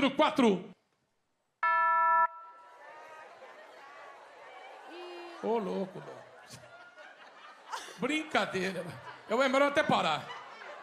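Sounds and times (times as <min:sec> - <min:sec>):
speech: 0:00.0 - 0:00.8, 0:05.4 - 0:06.6, 0:08.0 - 0:10.4
loud bright electronic doorbell ding-dong chime: 0:01.6 - 0:02.6
laughter: 0:02.7 - 0:10.8.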